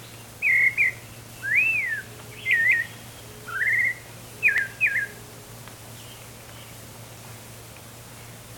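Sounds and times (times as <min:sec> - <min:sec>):
faint steady hum: 0:00.0 - 0:08.5
White-chinned thrush song: 0:00.4 - 0:05.1.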